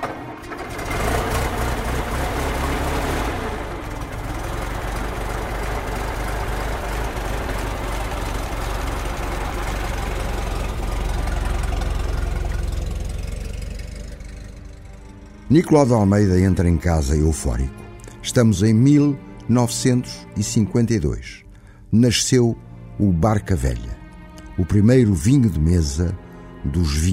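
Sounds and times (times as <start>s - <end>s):
hired car engine idling in Porto: 0.0s - 16.3s
speech: 15.5s - 23.9s, 24.6s - 27.1s.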